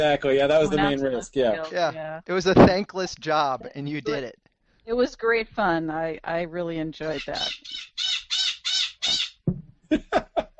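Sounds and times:
speech: 0.0 - 8.2, 9.9 - 10.3
crow cawing with harsh rasping calls: 7.3 - 9.4
laughter: 9.9 - 10.5.

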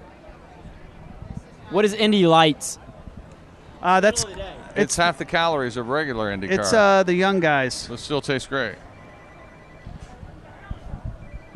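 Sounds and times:
crowd bustle: 0.0 - 11.5
speech: 1.7 - 2.8, 3.8 - 8.9
telephone ringing: 8.8 - 10.1, 11.2 - 11.5.

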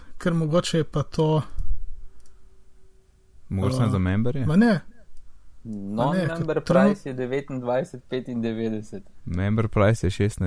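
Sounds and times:
low hum: 0.0 - 10.4
speech: 0.2 - 1.6, 3.5 - 4.9, 5.6 - 10.4
light clicks: 1.5 - 2.4.

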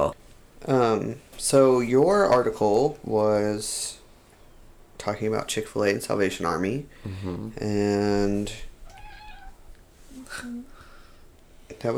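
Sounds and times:
speech: 0.0 - 4.0, 5.0 - 8.7, 10.3 - 10.7
house cat meowing: 8.8 - 9.8.

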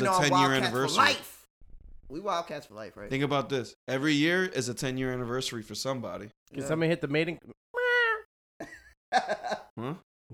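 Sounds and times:
speech: 0.0 - 1.3, 2.1 - 7.6, 8.6 - 10.3
people imitating cat meows with their voices: 7.7 - 8.3.

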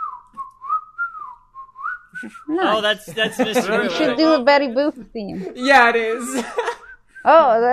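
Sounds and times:
person whistling a wolf whistle: 0.0 - 2.5
laughter: 2.2 - 6.9
speech: 2.2 - 7.7.

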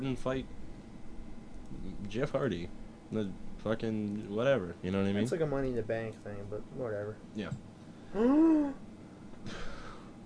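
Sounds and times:
speech: 0.0 - 0.6, 1.7 - 9.6
person gasping: 9.4 - 10.2.

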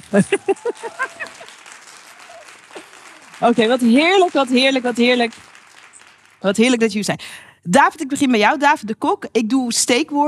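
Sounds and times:
laughter: 0.0 - 4.6
audience applause welcoming guests: 0.0 - 6.9
speech: 0.1 - 1.4, 3.4 - 5.4, 6.4 - 10.2.

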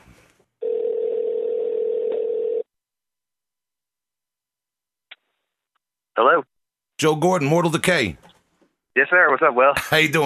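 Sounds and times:
telephone ringing tone over the line: 0.6 - 2.7
speech: 6.2 - 8.3, 9.0 - 10.2.

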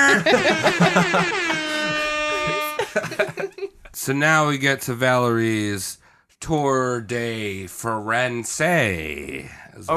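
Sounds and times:
laughter: 0.0 - 3.9
speech: 0.2 - 1.5, 4.0 - 9.9
loud brassy air horn blaring: 0.3 - 3.2.

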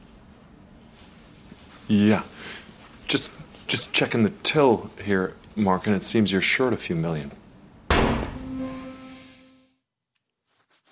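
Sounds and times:
faint rustling: 0.7 - 5.6
speech: 1.9 - 7.4
single loud gunshot: 7.9 - 8.4.

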